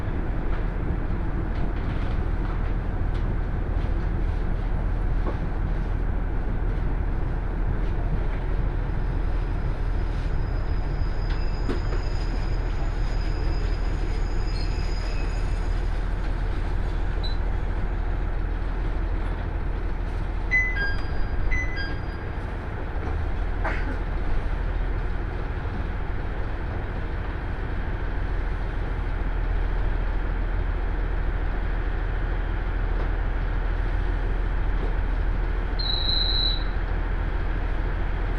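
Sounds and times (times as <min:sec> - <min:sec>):
two-car diesel railcar running along the line heard from inside: 0:00.0 - 0:38.3
faint high squeals: 0:10.1 - 0:15.8, 0:35.8 - 0:36.8
brief tone: 0:10.3 - 0:15.6, 0:17.2 - 0:17.4, 0:20.5 - 0:22.3, 0:35.8 - 0:36.8.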